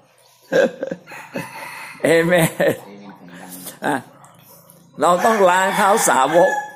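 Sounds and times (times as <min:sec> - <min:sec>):
speech: 0:00.5 - 0:01.0, 0:02.0 - 0:02.9, 0:03.8 - 0:04.1, 0:05.0 - 0:06.6
rooster crowing: 0:01.1 - 0:02.3, 0:05.0 - 0:06.7.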